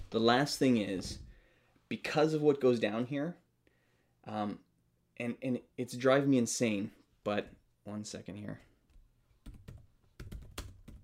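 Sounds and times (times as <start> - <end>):
speech: 0.1 - 1.2, 1.9 - 3.4, 4.2 - 8.7
typing on a computer keyboard while writing a short film script: 9.4 - 11.0.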